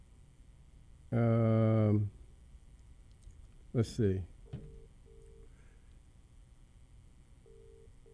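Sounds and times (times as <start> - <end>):
speech: 1.1 - 2.2, 3.7 - 4.3
telephone dial tone pulses after a dropped call-in line: 4.5 - 5.5, 7.5 - 8.1.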